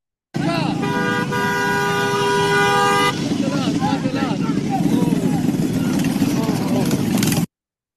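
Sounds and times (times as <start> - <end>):
street noise: 0.3 - 7.5
car horn honking: 0.4 - 3.8
excited voices during a street fight: 2.4 - 7.1.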